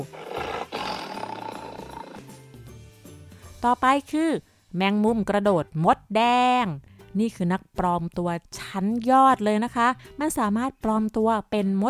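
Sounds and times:
tiger roaring: 0.0s - 2.4s
speech: 3.6s - 11.8s.

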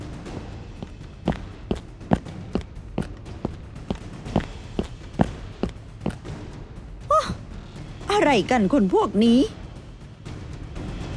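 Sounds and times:
running footsteps of a young man jogging: 0.7s - 6.3s
speech: 8.2s - 9.6s.

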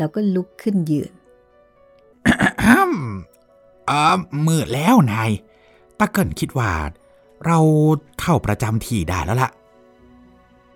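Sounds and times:
speech: 0.0s - 1.2s, 3.9s - 9.6s
person clearing their throat: 2.2s - 3.3s.

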